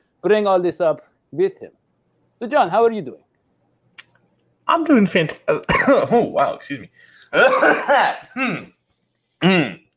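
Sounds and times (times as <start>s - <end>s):
speech: 0.2s - 1.8s, 2.4s - 3.3s, 4.7s - 8.8s, 9.4s - 9.8s
loud throat clearing: 7.4s - 8.8s, 9.4s - 9.9s.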